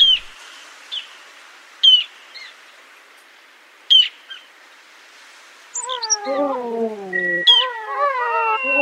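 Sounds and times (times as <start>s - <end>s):
Ruddy Turnstone calling short sharp high notes: 5.8s - 8.8s.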